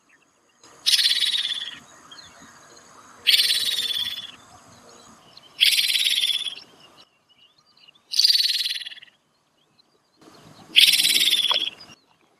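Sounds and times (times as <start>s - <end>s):
Striated Swallow calls: 0.8s - 2.6s, 3.2s - 4.4s, 5.5s - 6.8s, 8.1s - 9.2s, 10.3s - 12.3s.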